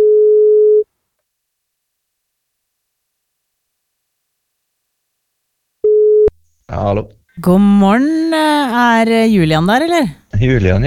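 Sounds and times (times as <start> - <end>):
telephone ringing tone on a call to a listener: 0.0 - 0.8, 5.9 - 6.3
speech: 6.8 - 10.8.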